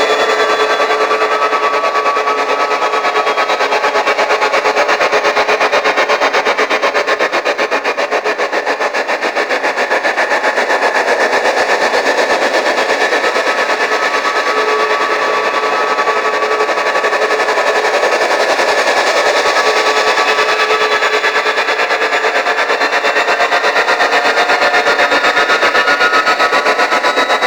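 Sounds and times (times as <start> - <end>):
slow vehicle engine loop: 0.0 - 27.4.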